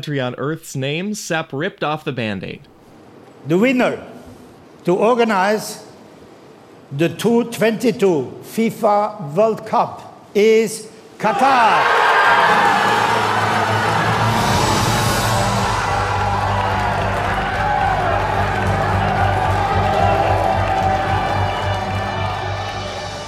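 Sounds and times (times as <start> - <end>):
speech: 0.0 - 2.7, 3.4 - 4.2, 4.8 - 5.9, 6.9 - 12.7
large crowd screaming at a FIFA World Cup host announcement: 11.2 - 23.2
steady droning horn tones: 12.6 - 23.2.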